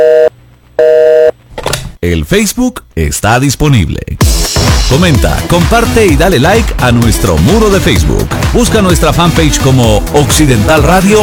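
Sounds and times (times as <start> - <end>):
telephone busy signal: 0.0 - 1.3
speech: 2.0 - 4.2, 4.9 - 11.2.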